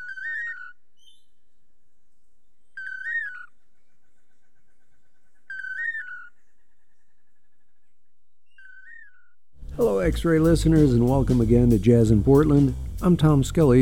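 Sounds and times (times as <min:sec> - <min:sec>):
long-tailed manakins duetting their toledo song: 0:00.0 - 0:01.4, 0:02.4 - 0:04.2, 0:05.4 - 0:07.4, 0:08.4 - 0:09.4
speech: 0:09.8 - 0:13.8.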